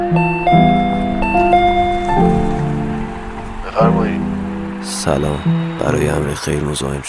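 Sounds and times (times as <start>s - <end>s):
electronic doorbell chime melody: 0.2s - 3.4s
speech: 5.0s - 7.0s.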